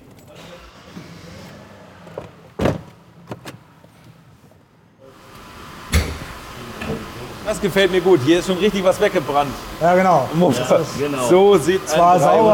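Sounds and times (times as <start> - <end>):
car door shutting: 0.4 - 3.7, 5.4 - 7.1
car idling and moving outside: 0.4 - 11.9
speech: 7.5 - 12.5.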